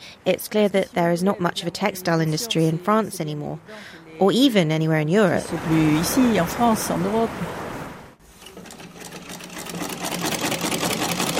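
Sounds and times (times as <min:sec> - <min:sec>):
speech: 0:00.2 - 0:07.6
old Victorian sewing machine hemming jeans in a workshop in Nîmes France: 0:08.4 - 0:11.3.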